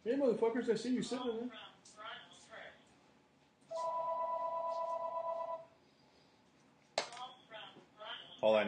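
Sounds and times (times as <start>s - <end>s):
speech: 0.1s - 2.3s, 8.4s - 8.6s
shop telephone ringing with an electronic trill: 3.7s - 5.7s.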